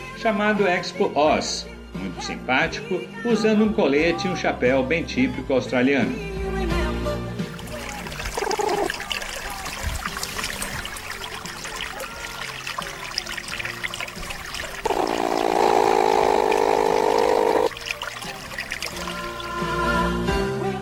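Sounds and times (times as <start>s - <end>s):
speech: 0.2s - 6.8s
steady watery trickle: 7.4s - 20.1s
platypus buzzy grumble and harsh droning growl: 8.1s - 9.1s, 14.7s - 17.7s.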